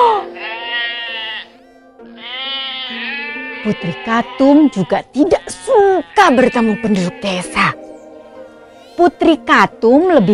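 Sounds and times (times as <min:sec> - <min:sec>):
lamb bleating: 0:00.1 - 0:07.8
speech: 0:03.6 - 0:07.8, 0:09.0 - 0:10.3.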